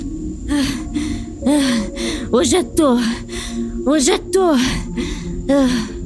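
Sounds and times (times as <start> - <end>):
voice panting hard imitating a boy out of breath: 0.5 - 2.3, 3.0 - 3.8, 4.7 - 6.0
speech: 0.5 - 5.9.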